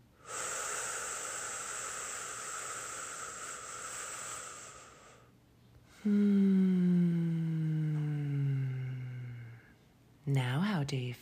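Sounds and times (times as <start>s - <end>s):
long breathy intake of air: 0.2s - 5.3s, 5.9s - 9.8s
loud exhale turning into a voiced sigh: 0.2s - 5.3s, 5.9s - 9.8s
speech: 6.0s - 6.4s, 10.3s - 11.2s.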